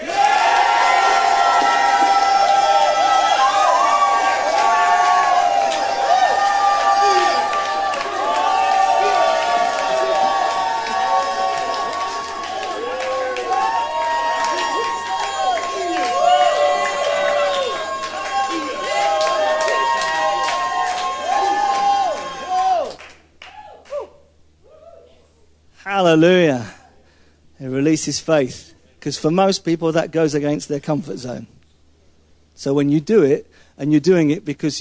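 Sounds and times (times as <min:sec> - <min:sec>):
large crowd cheering, whooping and yelling: 0:00.0 - 0:25.1
speech: 0:26.2 - 0:26.4, 0:28.0 - 0:31.6, 0:32.6 - 0:34.7.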